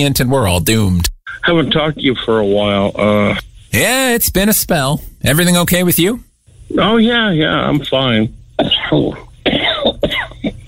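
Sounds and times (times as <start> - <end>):
speech: 0.0 - 9.3
person coughing harshly: 8.6 - 10.6.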